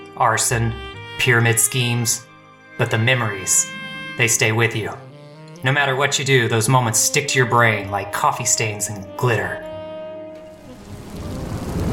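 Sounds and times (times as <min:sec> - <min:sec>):
speech: 0:00.2 - 0:09.7
rain pouring outdoors: 0:10.4 - 0:11.9.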